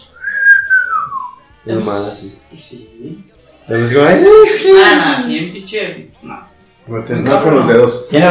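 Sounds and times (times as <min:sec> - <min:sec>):
person whistling a sliding tone: 0:00.1 - 0:01.4
speech: 0:01.6 - 0:08.2.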